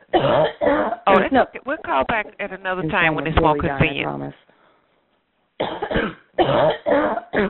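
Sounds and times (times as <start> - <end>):
person coughing: 0.0 - 1.2, 5.6 - 7.4
speech: 1.3 - 4.5, 5.6 - 7.4.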